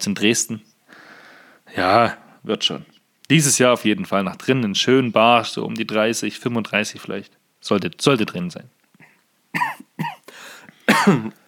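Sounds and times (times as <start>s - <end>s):
speech: 0.0s - 0.7s, 1.7s - 8.8s, 10.9s - 11.4s
person coughing: 9.0s - 11.4s
rough throat-clearing rasp: 10.9s - 11.4s.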